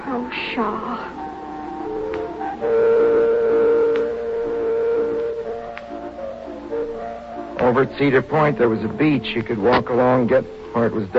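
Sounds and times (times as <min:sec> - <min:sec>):
speech: 0:00.3 - 0:01.2, 0:07.7 - 0:11.1
steam train whistle blowing a chord-like tone: 0:02.6 - 0:05.8.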